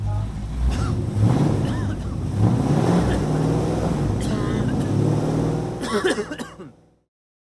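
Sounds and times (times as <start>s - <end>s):
combustion-engine car passing by: 0.0s - 5.8s.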